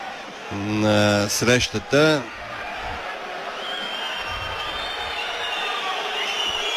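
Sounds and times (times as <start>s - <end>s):
stadium crowd roaring: 0.0s - 6.7s
speech: 0.5s - 2.4s
stadium fans whistling in disapproval: 3.0s - 6.7s.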